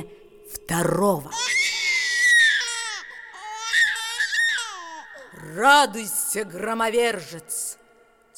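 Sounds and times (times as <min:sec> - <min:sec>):
speech: 0:00.0 - 0:01.4, 0:05.5 - 0:07.6
newborn baby crying: 0:01.3 - 0:05.4.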